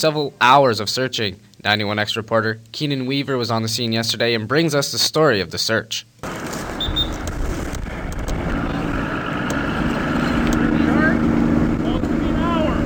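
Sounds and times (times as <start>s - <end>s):
speech: 0.0s - 6.5s
police divers' boat motor droning on the Bay of Quinte: 7.8s - 12.8s.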